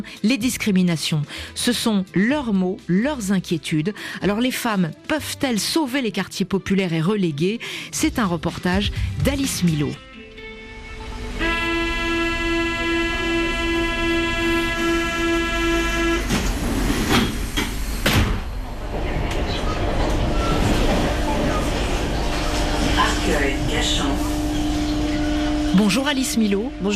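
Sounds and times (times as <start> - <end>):
speech: 0.0 - 10.1, 25.9 - 26.9
RER suburban commuter train running by: 10.5 - 26.9.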